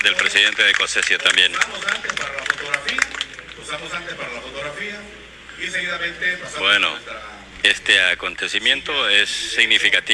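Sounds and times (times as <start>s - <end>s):
crowd clapping: 0.0s - 3.8s
speech: 0.1s - 2.4s, 3.7s - 10.1s.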